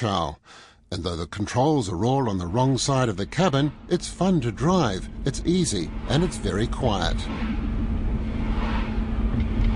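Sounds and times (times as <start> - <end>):
speech: 0.0 - 7.7
road and engine rumble inside a moving hydrogen fuel-cell electric car: 1.9 - 9.7.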